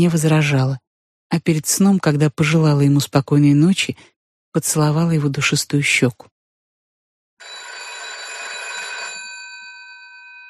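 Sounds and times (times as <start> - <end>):
speech: 0.0 - 6.3
telephone bell ringing with a bright metallic tone: 7.4 - 10.4.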